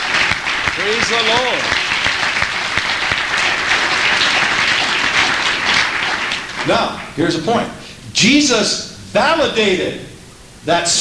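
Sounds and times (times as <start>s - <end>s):
audience clapping hands in worship: 0.0s - 7.7s
speech: 0.8s - 1.8s, 6.6s - 11.0s.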